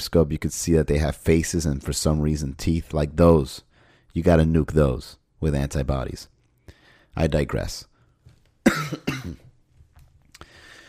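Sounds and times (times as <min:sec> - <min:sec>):
speech: 0:00.0 - 0:06.3, 0:07.2 - 0:07.9, 0:08.6 - 0:09.4
sharp coughs: 0:08.6 - 0:09.5.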